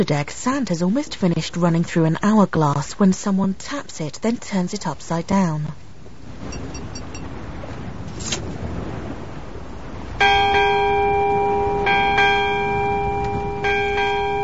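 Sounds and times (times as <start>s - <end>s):
speech: 0.0s - 5.8s, 6.4s - 6.8s
steady low rumble: 0.0s - 14.4s
ship's bell rung on the quarterdeck of a sailing ship: 6.5s - 7.3s, 10.2s - 14.4s.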